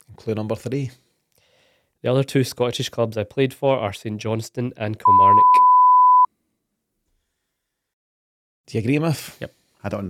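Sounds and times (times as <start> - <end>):
speech: 0.2 - 1.0, 2.0 - 5.6, 8.7 - 10.0
censor bleep covering a spoken guess in a quiz: 5.0 - 6.3.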